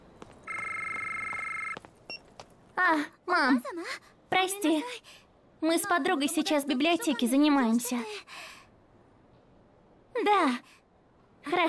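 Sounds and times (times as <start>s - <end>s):
phone ringtone for an incoming call: 0.5s - 1.8s
speech: 2.8s - 8.5s, 10.2s - 10.8s, 11.4s - 11.6s.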